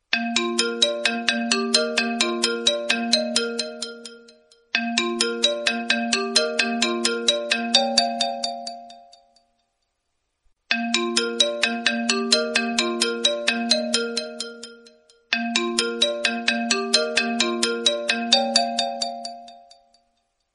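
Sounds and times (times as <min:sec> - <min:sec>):
classic ringtone: 0:00.0 - 0:09.8, 0:10.7 - 0:20.3.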